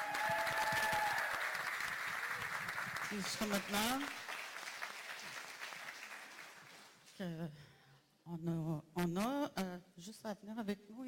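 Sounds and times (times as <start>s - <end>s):
audience applauding: 0.0s - 7.0s
speech: 3.1s - 4.2s, 7.2s - 11.0s.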